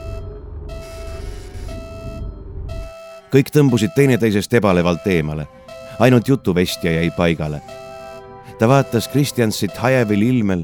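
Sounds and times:
steady low engine-like rumble: 0.0s - 3.0s
electronic alarm signals from a ship's support systems beeping: 0.0s - 10.6s
speech: 3.3s - 7.8s, 8.6s - 10.6s.

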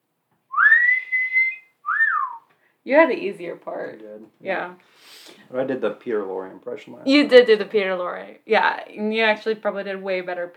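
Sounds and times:
person whistling a clear rising note: 0.5s - 2.4s
speech: 2.8s - 10.5s.

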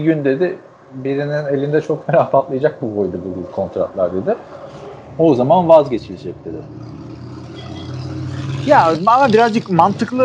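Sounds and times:
speech: 0.0s - 7.0s, 8.7s - 10.2s
car engine rumble: 2.8s - 10.2s.

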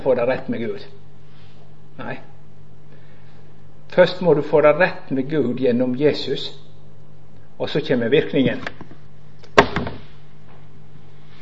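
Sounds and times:
speech: 0.0s - 1.1s, 2.0s - 2.4s, 3.9s - 6.6s, 7.6s - 8.8s
object dropped on a hard floor: 9.6s - 10.1s.

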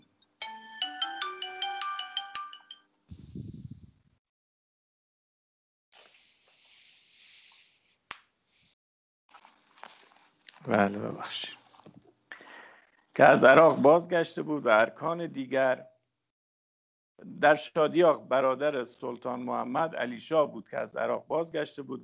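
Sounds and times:
phone ringtone with stacked electronic tones: 0.4s - 2.9s
rustling, hissing and handling noises: 9.3s - 12.2s
speech: 10.6s - 11.6s, 13.2s - 15.9s, 17.2s - 22.0s.

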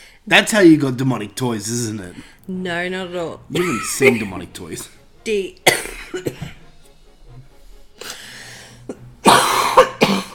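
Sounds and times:
speech: 0.2s - 6.6s
harsh rasping coughing and hacking: 3.5s - 4.4s, 5.6s - 6.6s, 8.9s - 10.3s.

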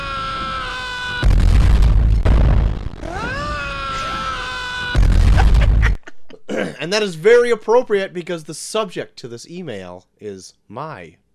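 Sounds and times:
rising wavering shriek sound effect: 0.0s - 1.5s, 3.0s - 5.9s
loud crashing bursts of noise: 0.0s - 6.0s
laughter: 5.2s - 6.7s
speech: 6.8s - 11.2s.

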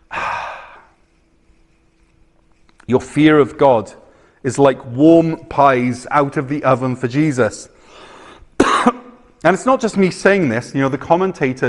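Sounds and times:
person imitating a deep inhalation: 0.0s - 1.0s, 7.8s - 8.5s
speech: 2.9s - 8.1s, 8.8s - 11.6s.

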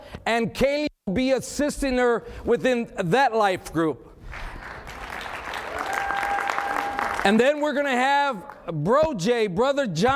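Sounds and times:
speech: 0.3s - 4.1s, 7.2s - 10.1s
church congregation applauding: 4.3s - 7.6s.

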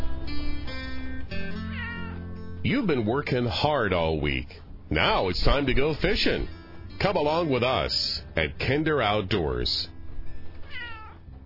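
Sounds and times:
cat meowing at screen door: 1.6s - 2.2s, 10.6s - 11.2s
speech: 2.6s - 9.9s.

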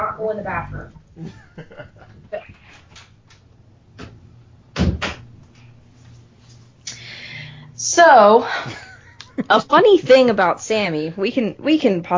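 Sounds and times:
speech: 0.2s - 2.4s, 8.0s - 8.8s, 9.4s - 12.1s
laughter: 1.2s - 2.5s
door shutting with a solid thud: 4.0s - 5.3s.

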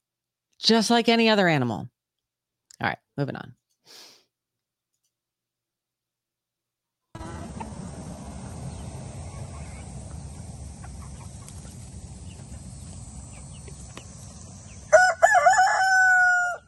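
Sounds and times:
speech: 0.6s - 2.0s, 2.8s - 4.0s
rooster crowing: 7.2s - 12.6s, 14.4s - 16.6s
low rumble: 7.2s - 15.6s.

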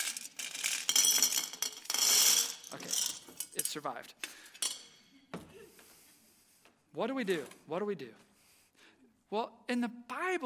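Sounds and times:
coins tumbling into a small glass jar: 0.0s - 3.9s, 4.6s - 5.0s
speech: 3.7s - 4.3s, 7.0s - 8.3s, 9.3s - 10.4s.

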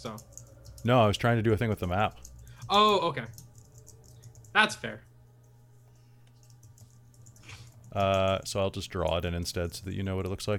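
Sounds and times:
speech: 0.0s - 3.4s, 4.5s - 5.1s, 7.9s - 10.5s
keyboard typing clicks: 0.0s - 4.6s, 6.3s - 9.4s
steady low electrical hum: 0.0s - 10.5s.

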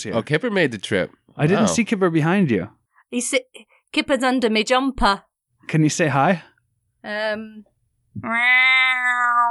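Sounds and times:
speech: 0.0s - 9.4s
person imitating cat meows: 8.2s - 9.4s.

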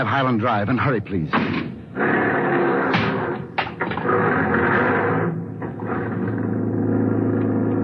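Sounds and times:
speech: 0.0s - 2.7s
taxi engine rumbling as it pulls away: 3.0s - 7.8s.

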